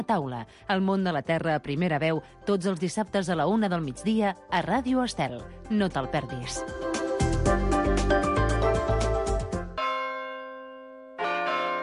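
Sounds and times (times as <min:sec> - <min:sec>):
speech: 0:00.0 - 0:06.9
church bells ringing in a dense overlapping peal: 0:07.7 - 0:11.8.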